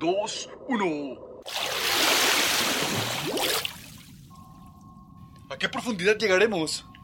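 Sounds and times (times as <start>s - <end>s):
speech: 0.0s - 1.7s, 2.9s - 3.8s, 5.5s - 6.9s
rush of churning water from submarine diving beneath a calm sea: 1.5s - 3.9s.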